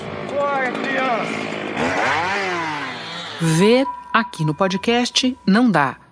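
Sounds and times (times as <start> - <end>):
chainsaw felling a tree in Pacaás Novos National Park, Rondônia: 0.0 - 3.5
speech: 0.4 - 2.7, 3.4 - 6.0.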